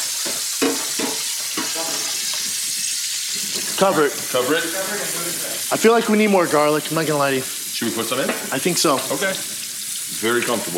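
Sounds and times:
clams frying and sizzling in a very hot pan: 0:00.0 - 0:10.7
knocks and scrapes as the pan is stirred: 0:00.1 - 0:02.6
speech: 0:03.8 - 0:09.6, 0:10.2 - 0:10.7.

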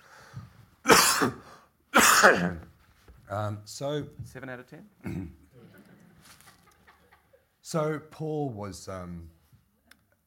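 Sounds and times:
faint breathing: 0:00.0 - 0:00.6
harsh forceful coughs: 0:00.8 - 0:02.7, 0:05.0 - 0:05.4
speech: 0:01.2 - 0:01.4, 0:02.2 - 0:02.7, 0:03.3 - 0:05.4, 0:07.7 - 0:09.4
laughter: 0:05.4 - 0:07.5.

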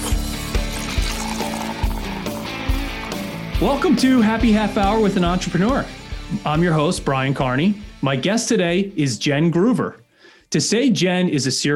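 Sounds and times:
drink glugging from a bottle into a glass: 0:00.0 - 0:03.3
speech: 0:03.6 - 0:11.7.

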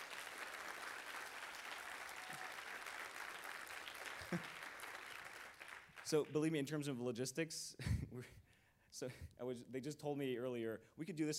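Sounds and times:
audience applauding the organizers at a large conference: 0:00.0 - 0:06.5
speech: 0:04.3 - 0:04.6, 0:06.1 - 0:08.4, 0:09.0 - 0:11.3.

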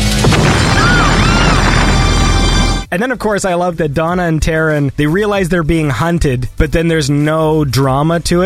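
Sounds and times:
boat exploding in a film scene with debris and fire: 0:00.1 - 0:02.9
speech: 0:03.0 - 0:08.4.

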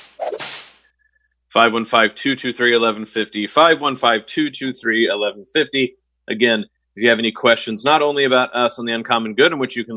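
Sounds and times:
whip crack sound effect: 0:00.0 - 0:00.8
speech: 0:01.5 - 0:09.9.

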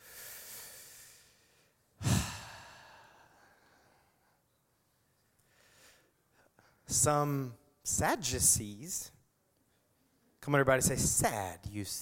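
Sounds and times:
deep inhaling breath: 0:00.0 - 0:04.2
speech: 0:06.9 - 0:09.2, 0:10.4 - 0:11.9.

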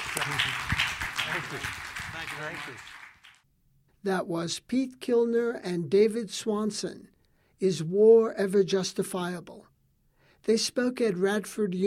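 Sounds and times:
audience applause with many hands clapping: 0:00.0 - 0:03.4
speech: 0:01.3 - 0:02.9, 0:04.0 - 0:09.7, 0:10.4 - 0:11.8.

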